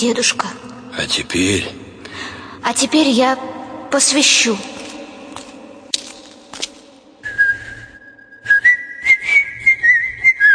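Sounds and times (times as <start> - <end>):
speech: 0.0 - 4.8
man whistling a melodic tune in a chapel: 7.2 - 10.5.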